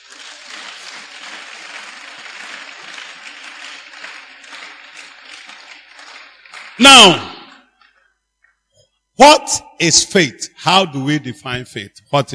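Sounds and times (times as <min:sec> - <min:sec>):
audience clapping: 0:00.0 - 0:07.7
speech: 0:06.8 - 0:07.3, 0:09.2 - 0:12.3.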